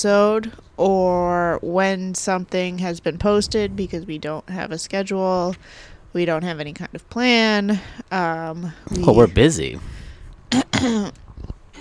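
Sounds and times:
speech: 0.0s - 11.2s
person clearing throat: 10.5s - 11.2s.

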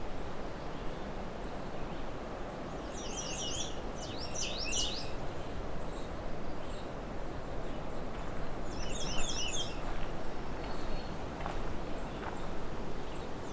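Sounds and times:
steady low background noise: 0.0s - 13.5s
American redstart singing: 2.9s - 5.2s, 8.7s - 9.8s.

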